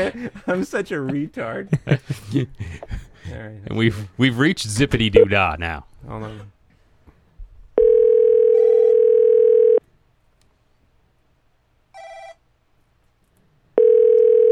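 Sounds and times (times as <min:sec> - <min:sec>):
laughter: 0:00.0 - 0:03.6
speech: 0:00.0 - 0:06.5
steady telephone dial tone: 0:07.8 - 0:09.8, 0:13.8 - 0:14.5.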